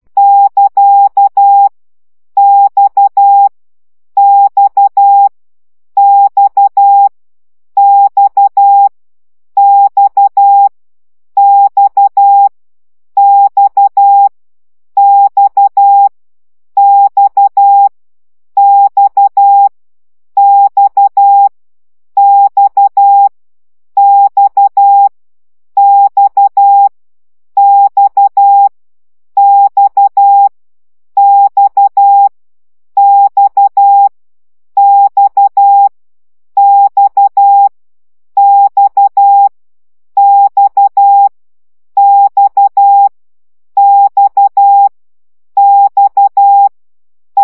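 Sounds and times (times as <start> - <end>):
morse code beeps at 10 baud: 0.2 - 1.7, 2.4 - 3.5, 4.2 - 5.3, 6.0 - 7.1, 7.8 - 8.9, 9.6 - 10.7, 11.4 - 12.5, 13.2 - 14.3, 15.0 - 16.1, 16.8 - 17.9, 18.6 - 19.7, 20.4 - 21.5, 22.2 - 23.3, 24.0 - 25.1, 25.8 - 26.9, 27.6 - 28.7, 29.4 - 30.5, 31.2 - 32.3, 33.0 - 34.1, 34.8 - 35.9, 36.6 - 37.7, 38.4 - 39.5, 40.2 - 41.3, 42.0 - 43.1, 43.8 - 44.9, 45.6 - 46.7.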